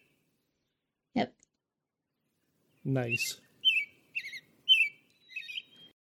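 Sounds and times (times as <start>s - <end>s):
American robin calling: 0.0s - 0.3s, 2.7s - 6.0s
speech: 1.2s - 1.4s, 2.9s - 3.5s.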